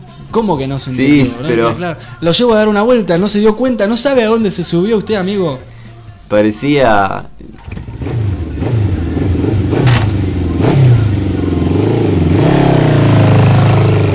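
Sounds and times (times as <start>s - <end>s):
speech: 0.3s - 5.7s, 6.3s - 7.7s
motorcycle engine revving: 7.5s - 14.1s.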